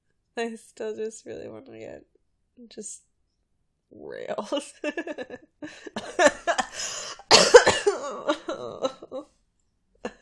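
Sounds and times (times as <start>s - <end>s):
speech: 0.4s - 3.1s, 3.9s - 7.0s
harsh coughing: 6.0s - 8.5s.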